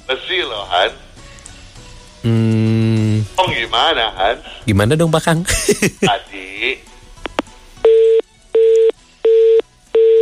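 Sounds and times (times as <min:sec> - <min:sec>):
speech: 0:00.1 - 0:01.0, 0:02.2 - 0:02.5, 0:03.5 - 0:06.9
laughter: 0:05.5 - 0:06.2
telephone busy tone after a call is disconnected: 0:07.8 - 0:10.1.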